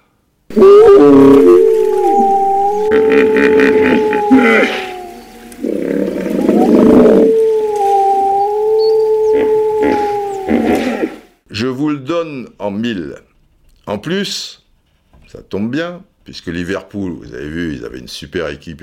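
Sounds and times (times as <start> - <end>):
speech: 0.5 - 1.4, 3.2 - 4.9, 13.9 - 14.6, 15.3 - 18.8
wolf howls: 0.5 - 11.3.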